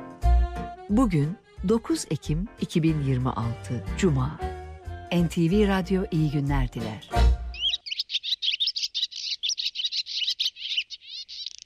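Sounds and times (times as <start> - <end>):
speech: 0.9 - 4.5, 5.1 - 7.4
migratory birds chirping and warbling: 7.5 - 11.6.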